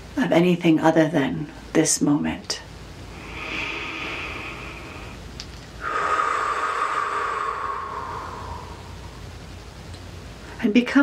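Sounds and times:
speech: 0.2s - 2.7s, 10.8s - 11.0s
deep breathing in and out during a guided meditation: 3.0s - 10.5s.

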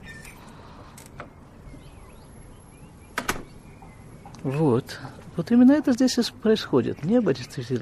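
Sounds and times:
outdoor street ambience hiss: 0.0s - 7.8s
door latch releasing and door opening onto street: 3.2s - 3.5s
speech: 4.4s - 7.8s.

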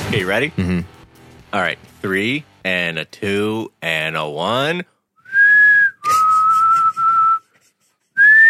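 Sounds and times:
speech: 0.1s - 1.0s, 1.5s - 4.9s
person whistling loud sustained tones into a microphone: 5.2s - 7.6s, 8.2s - 8.4s.

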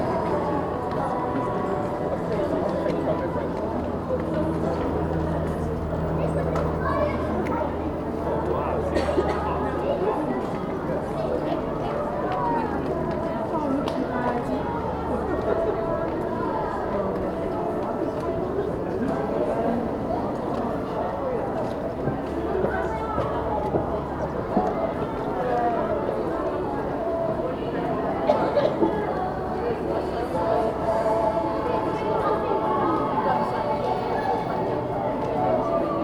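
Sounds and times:
overlapping voices and chatter of Christmas shoppers on a busy shopping street: 0.0s - 36.0s.

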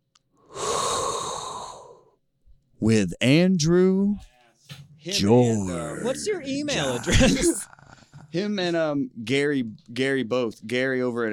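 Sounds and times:
inhaled breath: 0.4s - 2.2s
speech: 2.8s - 11.3s.

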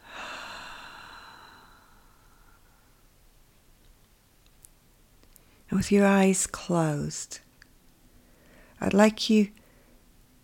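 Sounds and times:
slow breath out during a closing relaxation exercise: 0.0s - 3.0s, 8.2s - 8.8s
speech: 5.7s - 7.4s, 8.8s - 9.6s.

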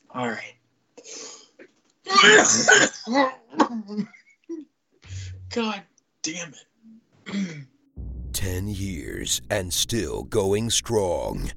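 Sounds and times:
speech: 0.1s - 1.2s, 2.2s - 4.6s, 5.5s - 6.7s, 8.4s - 11.5s
person coughing in a harsh fit: 2.1s - 3.8s
throat clearing: 7.2s - 7.7s.

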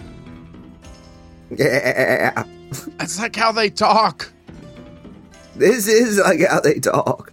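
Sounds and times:
person imitating a goat bleat: 1.5s - 2.5s
speech: 1.5s - 4.4s, 5.6s - 7.3s.

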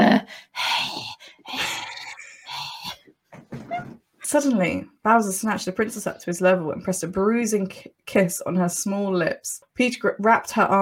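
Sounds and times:
person imitating heavy breathing with huffs and groaning exhales: 0.3s - 3.0s
speech: 4.3s - 10.8s.

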